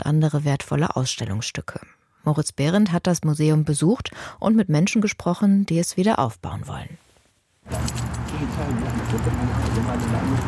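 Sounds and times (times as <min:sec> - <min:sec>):
speech: 0:00.1 - 0:07.0, 0:07.7 - 0:10.4
bunch of keys jingling on a waistband as someone walks: 0:07.7 - 0:10.4.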